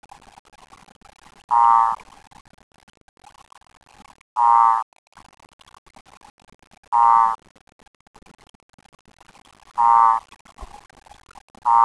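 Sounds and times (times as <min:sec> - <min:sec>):
Cordoba escuerzo Odontophrynus cordobae advertisement call pulsed trills: 0:01.5 - 0:02.0, 0:04.4 - 0:04.8, 0:06.9 - 0:07.4, 0:09.8 - 0:10.2.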